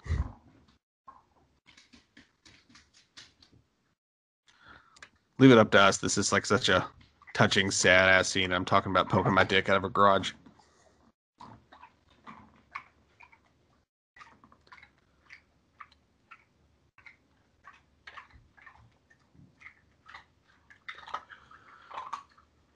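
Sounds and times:
speech: 0:05.4 - 0:10.4
dog eating loudly: 0:14.2 - 0:22.4.

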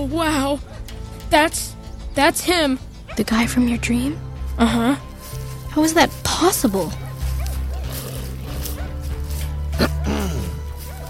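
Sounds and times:
speech: 0:00.0 - 0:05.1, 0:05.8 - 0:07.0
dog barking: 0:06.8 - 0:11.0
dog yipping: 0:06.9 - 0:09.2, 0:10.8 - 0:11.0.

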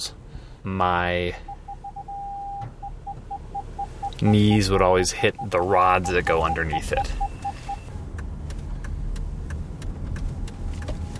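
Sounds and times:
speech: 0:00.0 - 0:01.5, 0:04.2 - 0:07.2
car with left-sided hand controls driving, engine and road rumble: 0:00.0 - 0:11.1
light regular ticks: 0:07.4 - 0:11.1.

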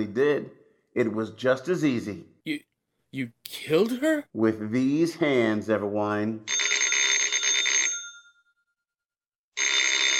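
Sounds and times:
speech: 0:00.0 - 0:06.6
old telephone bell ringing: 0:06.5 - 0:10.1.

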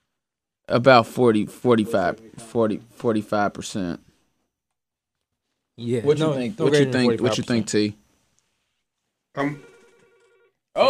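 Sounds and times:
speech: 0:00.7 - 0:04.1, 0:05.8 - 0:08.0, 0:09.4 - 0:09.7
telephone ringing with warbling ring tones: 0:09.4 - 0:10.6.

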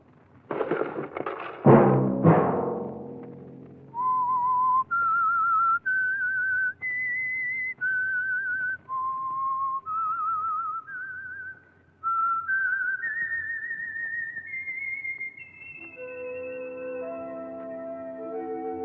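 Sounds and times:
crashing noise: 0:00.0 - 0:04.9
whistled melody: 0:03.9 - 0:18.8.

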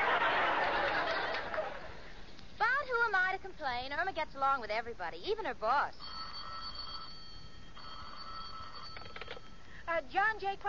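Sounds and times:
laughter: 0:00.0 - 0:02.1
hiss: 0:00.0 - 0:10.6
speech: 0:03.3 - 0:06.1, 0:09.9 - 0:10.6
old telephone bell ringing in an attorney's office: 0:06.0 - 0:09.7.

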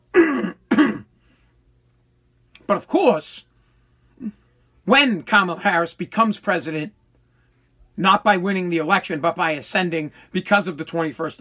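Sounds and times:
person clearing throat: 0:00.1 - 0:01.1
speech: 0:02.7 - 0:03.5, 0:04.2 - 0:07.0, 0:08.0 - 0:11.4.

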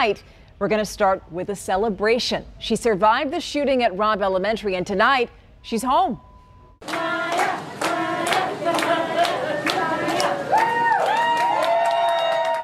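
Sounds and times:
speech: 0:00.0 - 0:07.2
crowd clapping: 0:06.8 - 0:12.6
voices cheering and shouting with whoops: 0:10.3 - 0:12.6.

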